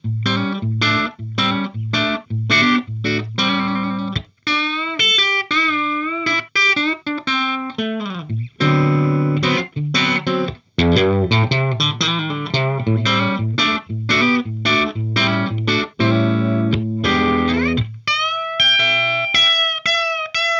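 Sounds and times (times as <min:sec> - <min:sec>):
blues guitar with P90 pickup: 0:00.0 - 0:20.5.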